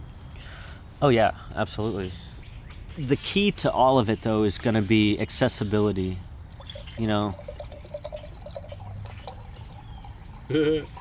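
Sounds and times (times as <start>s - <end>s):
speech: 1.0s - 2.3s, 3.0s - 6.3s, 7.0s - 7.5s, 10.5s - 11.0s
water pouring into a glass: 6.5s - 11.0s.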